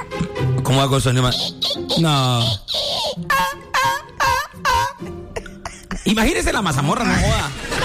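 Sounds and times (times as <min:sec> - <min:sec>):
speech: 0:00.7 - 0:02.8, 0:06.1 - 0:07.7
voice mimicking the pained whimpering of a stepped-on puppy: 0:01.1 - 0:05.2.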